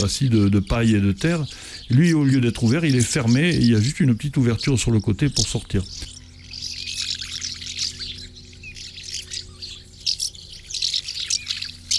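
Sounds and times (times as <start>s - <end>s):
speech: 0.0s - 6.1s
house martins chirping and twittering: 0.0s - 11.9s
low steady hum: 0.0s - 11.9s.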